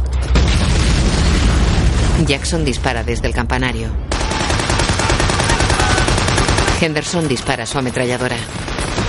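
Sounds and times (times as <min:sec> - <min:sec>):
explosive charge set off by a detonator: 0:00.2 - 0:06.4
speech: 0:02.2 - 0:04.2, 0:06.8 - 0:09.0.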